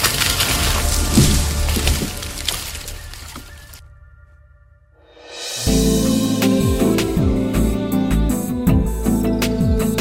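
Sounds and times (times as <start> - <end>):
tree branch cracking and splintering: 0.0 - 3.8
music: 0.0 - 9.9.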